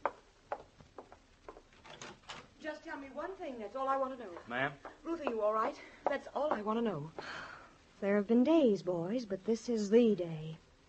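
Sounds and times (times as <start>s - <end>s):
door creaking as it swings: 1.7s - 2.5s
speech: 2.6s - 7.4s, 8.0s - 10.6s.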